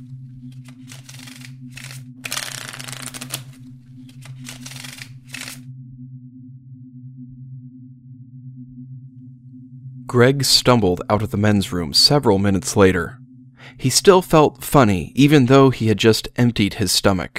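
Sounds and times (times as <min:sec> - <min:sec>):
playing cards being shuffled: 0:00.0 - 0:05.6
steady low hum: 0:00.0 - 0:16.4
speech: 0:10.1 - 0:13.2, 0:13.8 - 0:17.3.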